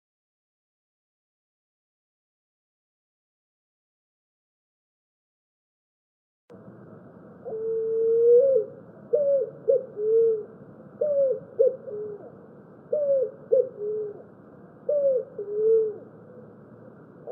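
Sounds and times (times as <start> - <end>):
Picazuro pigeon song: 7.4 - 17.2.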